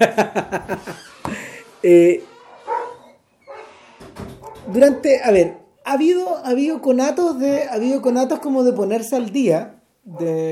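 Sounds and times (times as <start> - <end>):
speech: 0.0 - 0.8, 1.8 - 2.3, 4.7 - 10.5
laughter: 0.0 - 1.7
small dog barking: 2.7 - 3.7.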